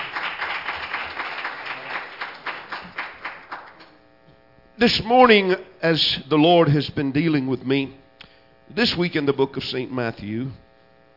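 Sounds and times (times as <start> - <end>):
crowd applauding: 0.0 - 4.0
speech: 4.8 - 8.0, 8.7 - 10.6.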